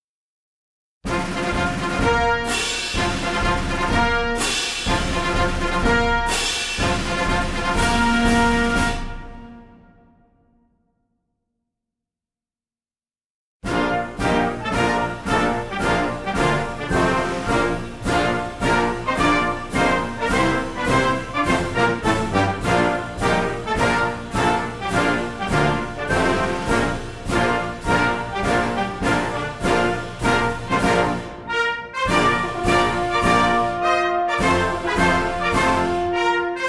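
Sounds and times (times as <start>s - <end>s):
ceremonial fanfare of ruffles and flourishes: 1.1s - 10.2s, 13.6s - 36.6s
march music: 1.1s - 10.4s, 13.6s - 36.6s.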